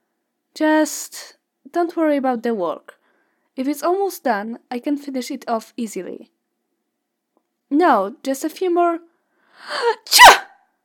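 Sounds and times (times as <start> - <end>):
speech: 0.6 - 3.0, 3.6 - 6.3, 7.7 - 10.5
person sneezing loudly: 9.9 - 10.6.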